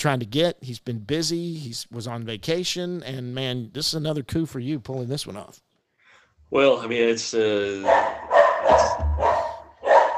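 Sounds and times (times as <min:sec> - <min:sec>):
speech: 0:00.0 - 0:05.7, 0:06.5 - 0:09.0
dog barking: 0:07.8 - 0:10.1.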